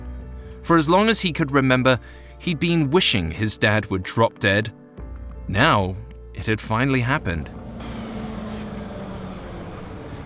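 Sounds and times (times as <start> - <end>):
speech: 0.6 - 4.8, 5.5 - 7.6
bus engine rumble: 6.7 - 10.2
Greyhound bus squealing to a stop: 7.4 - 10.2
bus air brakes hissing: 7.8 - 10.2.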